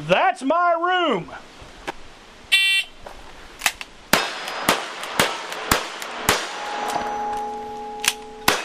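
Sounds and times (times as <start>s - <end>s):
speech: 0.1s - 1.5s
six-shooter pistol shots in a simulated old Western gunfight: 4.1s - 7.0s, 8.4s - 8.6s
bullets striking metal targets 15 to 20 yards away: 6.3s - 8.6s.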